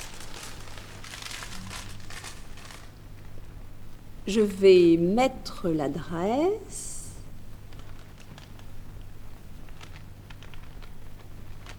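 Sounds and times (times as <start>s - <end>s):
paper crinkling as a purse is wrapped in it: 0.0s - 3.4s, 7.6s - 11.7s
steady low hum: 0.0s - 11.7s
speech: 4.2s - 6.9s.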